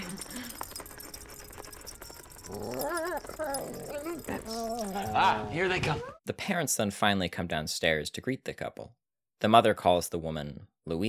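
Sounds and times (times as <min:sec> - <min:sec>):
family dog whimpering and yipping: 0:01.8 - 0:06.2
speech: 0:02.5 - 0:11.0.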